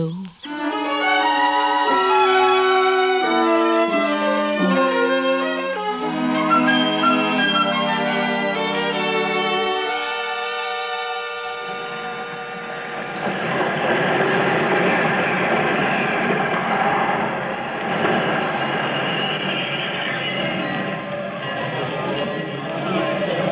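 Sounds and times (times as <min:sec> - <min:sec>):
train coming to a stop: 0:00.0 - 0:23.5.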